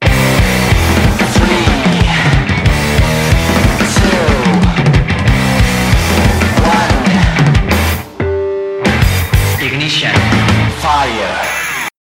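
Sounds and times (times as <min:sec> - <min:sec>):
intro music: 0:00.0 - 0:11.9.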